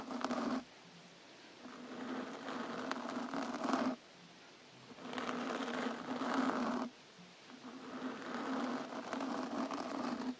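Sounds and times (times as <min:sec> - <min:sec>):
rough papery scratching strokes: 0:00.0 - 0:00.6, 0:01.6 - 0:04.0, 0:04.9 - 0:06.9, 0:07.6 - 0:10.3.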